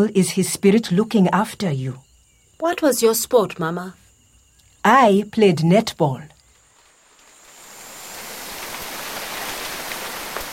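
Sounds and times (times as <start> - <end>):
speech: 0.0 - 2.0, 2.6 - 4.0, 4.8 - 6.3
heavy rain falling: 6.7 - 10.5.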